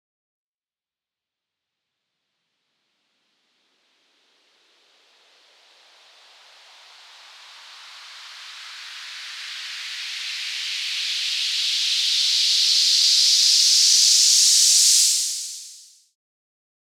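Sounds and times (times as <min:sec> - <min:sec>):
medium white noise sweep: 0:06.0 - 0:16.0.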